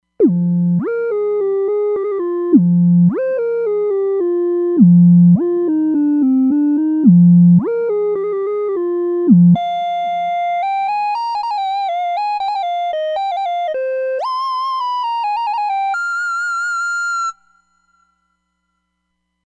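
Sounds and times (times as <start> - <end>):
sine wave synth arpeggio: 0.2 - 18.2.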